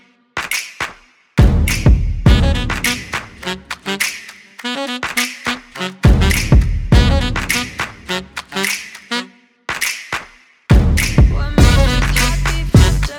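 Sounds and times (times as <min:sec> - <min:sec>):
heartbeat at 185: 0:01.4 - 0:02.9, 0:06.1 - 0:07.7, 0:10.7 - 0:13.1.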